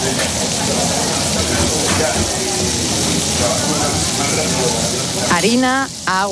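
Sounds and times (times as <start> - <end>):
churros frying in hot olive oil at a churro shop in Pamplona: 0.0 - 6.3
speech: 5.4 - 6.3.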